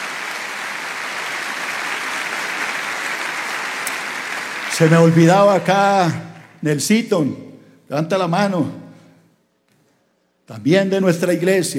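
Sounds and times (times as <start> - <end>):
audience crowd clapping: 0.0 - 6.7
speech: 4.8 - 8.8, 10.5 - 11.7.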